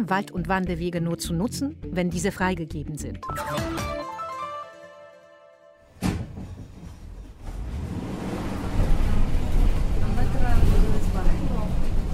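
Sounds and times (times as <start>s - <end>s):
speech: 0.0s - 4.0s
sharp clunk: 6.0s - 7.0s
bus engine straining with a deep heavy rumble: 6.0s - 12.1s.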